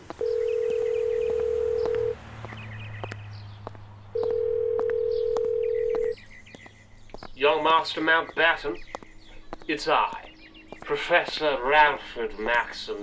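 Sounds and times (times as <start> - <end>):
telephone voicemail long steady beeps: 0.0 - 2.2, 4.1 - 6.2
speech: 7.4 - 8.9, 9.7 - 10.2, 10.9 - 13.0.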